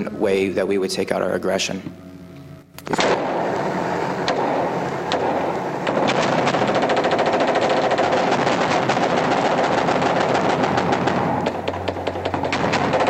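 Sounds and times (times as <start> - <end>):
speech: 0.0 - 2.1, 2.9 - 3.2
automatic machine gun fire shooting into a mosque: 2.9 - 13.0.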